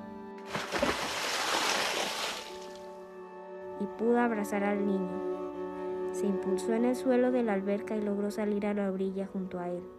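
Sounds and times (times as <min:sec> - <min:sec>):
splash of something plunging into water: 0:00.4 - 0:02.9
soft sustained musical tone: 0:02.7 - 0:09.9
speech: 0:03.8 - 0:05.4, 0:06.2 - 0:09.9.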